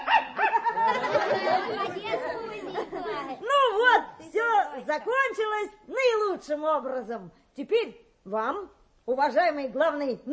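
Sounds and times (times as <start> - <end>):
dog barking: 0.0 - 0.7
laughter: 0.4 - 3.4
speech: 5.0 - 10.3.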